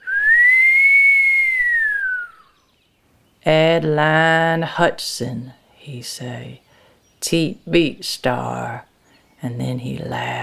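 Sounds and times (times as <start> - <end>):
long human whistle: 0.0 - 2.6
speech: 3.4 - 6.6, 7.2 - 10.4.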